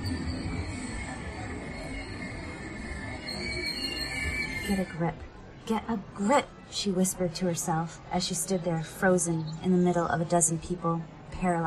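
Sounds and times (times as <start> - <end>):
train station rumble with mechanical drone: 0.0 - 5.1
high metallic whining from rail cars: 0.0 - 5.3
speech: 4.7 - 11.6.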